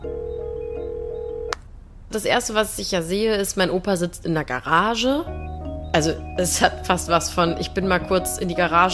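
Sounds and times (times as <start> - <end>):
steady electronic phone dialing tone: 0.0 - 1.6
faint noise: 0.0 - 8.9
speech: 2.1 - 8.9.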